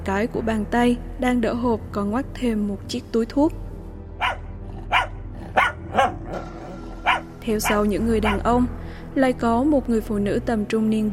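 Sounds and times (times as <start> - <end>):
speech: 0.0 - 3.6, 7.4 - 11.1
dog barking: 4.2 - 8.5.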